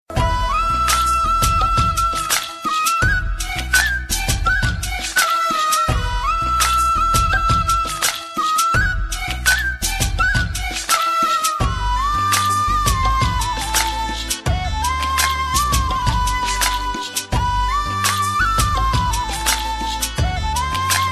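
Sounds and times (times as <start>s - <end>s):
flute: 0.1s - 21.1s.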